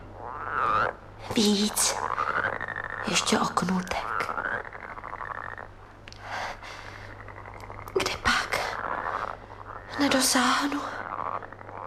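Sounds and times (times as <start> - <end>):
frog croaking near a pond: 0.0 - 11.8
speech: 1.3 - 2.1, 3.1 - 4.1, 10.0 - 11.0.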